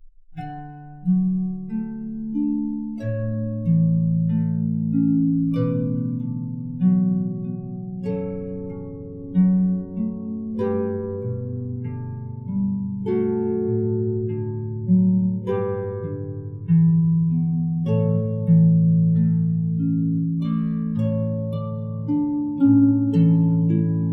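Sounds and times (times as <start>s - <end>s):
big harp playing a canon: 0.0s - 24.1s.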